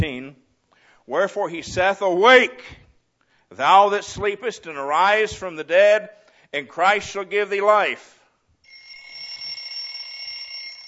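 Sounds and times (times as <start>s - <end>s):
speech: 1.1s - 2.8s, 3.5s - 8.2s
electronic alarm clock ringing: 8.6s - 10.8s.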